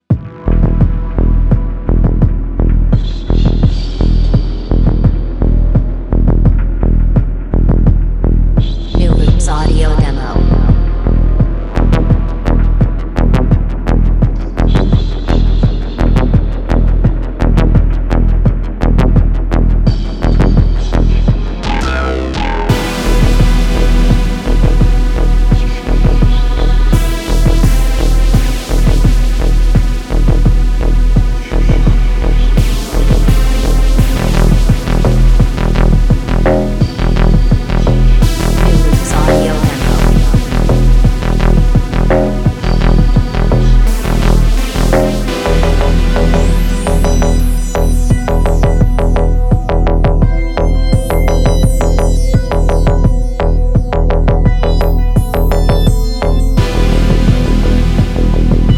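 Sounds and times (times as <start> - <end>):
plucked bass soundtrack: 0.1 - 58.7.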